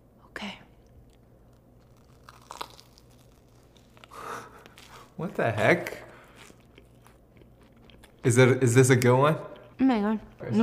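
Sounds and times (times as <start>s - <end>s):
biting and chewing an air-fried marshmallow: 1.1s - 8.3s
speech: 5.2s - 6.0s, 8.2s - 10.6s.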